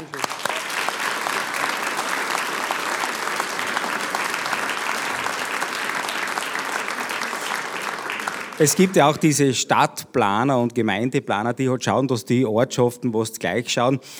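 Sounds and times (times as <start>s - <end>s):
crowd applauding with many hands clapping: 0.0s - 9.4s
speech: 8.6s - 14.1s.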